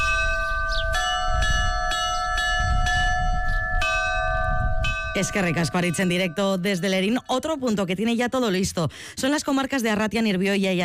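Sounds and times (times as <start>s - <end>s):
church bells pealing: 0.0s - 8.2s
speech: 5.2s - 10.8s.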